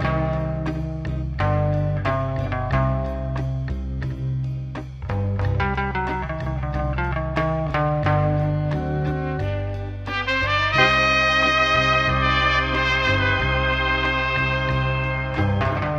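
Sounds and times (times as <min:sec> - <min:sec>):
guitar loops: 0:00.0 - 0:15.9
horn loops: 0:08.7 - 0:15.9.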